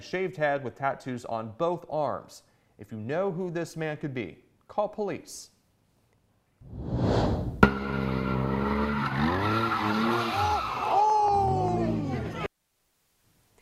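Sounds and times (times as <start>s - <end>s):
speech: 0.0s - 5.5s, 6.6s - 7.2s
car tires squealing while doing donuts: 7.9s - 12.5s.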